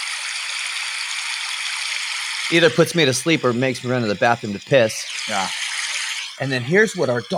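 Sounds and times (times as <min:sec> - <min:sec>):
speech: 0:02.5 - 0:05.6, 0:06.4 - 0:07.3
babbling brook sleep sound: 0:02.5 - 0:07.3.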